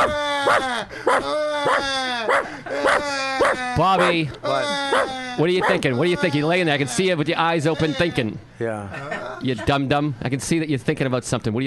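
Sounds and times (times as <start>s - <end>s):
dog whining in a high tone: 0.0s - 6.3s
speech: 0.4s - 11.6s
dog barking: 0.5s - 4.2s
laughter: 8.8s - 9.9s.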